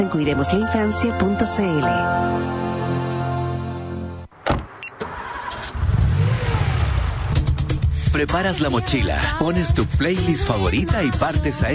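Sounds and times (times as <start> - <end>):
speech: 0.0 - 3.0, 8.2 - 11.7
car engine humming: 4.3 - 8.2
car engine revving and accelerating with a loud rumble: 5.0 - 7.9.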